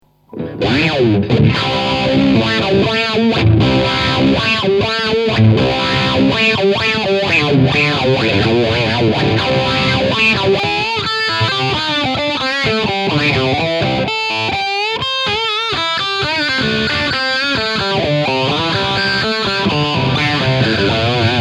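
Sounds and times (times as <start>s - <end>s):
guitar through Morley wah distortion: 0.0s - 21.3s.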